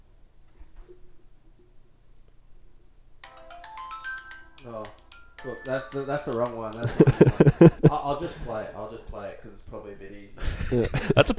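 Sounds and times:
downloaded mobile phone ringtone: 0:03.2 - 0:07.8
speech: 0:04.6 - 0:11.3
laughter: 0:06.8 - 0:08.6, 0:10.6 - 0:11.3.

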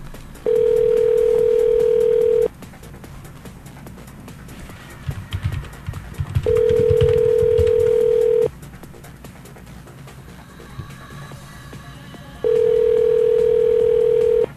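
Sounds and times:
low noise: 0:00.0 - 0:14.5
long steady telephone tones as a call is placed: 0:00.4 - 0:02.5, 0:06.4 - 0:08.5, 0:12.4 - 0:14.5.

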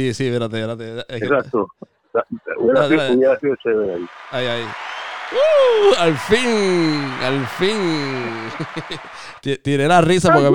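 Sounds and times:
speech: 0:00.0 - 0:10.5
laughter: 0:02.2 - 0:09.4
crowd applause: 0:04.0 - 0:09.4.

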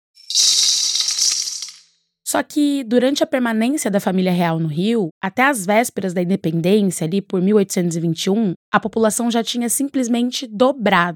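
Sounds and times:
coffee beans being poured out: 0:00.2 - 0:01.9
speech: 0:02.3 - 0:11.1.

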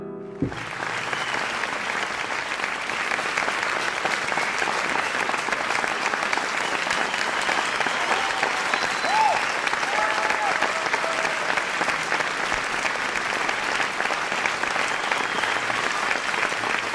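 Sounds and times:
large audience applause after a song: 0:00.3 - 0:16.9
whistles: 0:00.4 - 0:03.2, 0:04.3 - 0:10.5, 0:14.5 - 0:16.9
cheers: 0:00.5 - 0:16.9.

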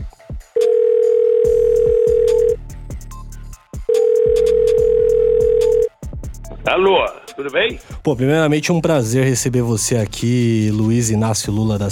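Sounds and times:
telephone line tone while a call is being placed: 0:00.6 - 0:02.6, 0:03.9 - 0:05.9
speech: 0:06.7 - 0:11.8.

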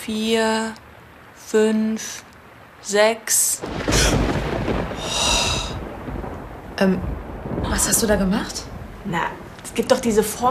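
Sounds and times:
speech: 0:00.0 - 0:00.9, 0:01.5 - 0:04.2, 0:06.8 - 0:10.5
low broad rumble of distant thunder: 0:03.6 - 0:10.5.

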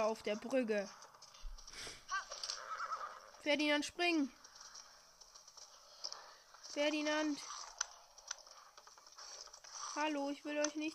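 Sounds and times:
speech: 0:00.0 - 0:01.1, 0:03.4 - 0:04.4, 0:06.8 - 0:07.6, 0:10.0 - 0:10.9
horse neighing: 0:02.1 - 0:03.4.

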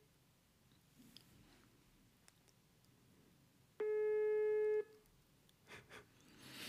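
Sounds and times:
mobile phone ringback tone on speakerphone: 0:03.8 - 0:04.9.

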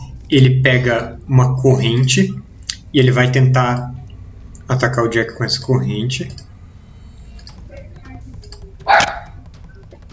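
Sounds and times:
low rumble: 0:00.0 - 0:10.1
speech: 0:00.3 - 0:04.0, 0:04.7 - 0:06.4
dog barking: 0:08.9 - 0:09.3.

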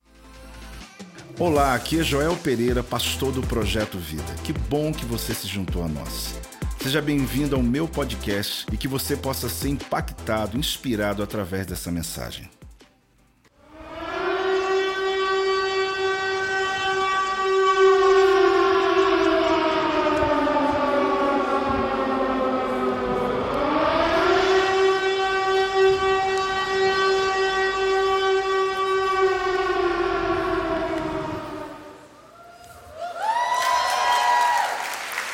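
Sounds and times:
speech: 0:01.3 - 0:12.6
civil defense siren wailing: 0:13.6 - 0:32.4, 0:33.3 - 0:35.2
broad crackling noise: 0:14.9 - 0:32.3.

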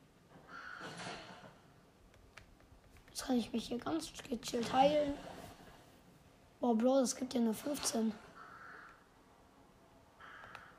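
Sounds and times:
raven cawing with harsh drawn-out croaks: 0:00.4 - 0:01.0, 0:08.3 - 0:09.2, 0:10.2 - 0:10.7
speech: 0:03.2 - 0:05.3, 0:06.7 - 0:08.3.

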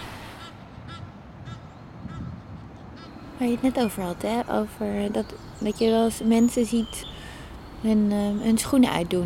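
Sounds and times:
Egyptian geese honking: 0:00.3 - 0:02.3
speech: 0:03.4 - 0:07.2, 0:07.8 - 0:09.2.

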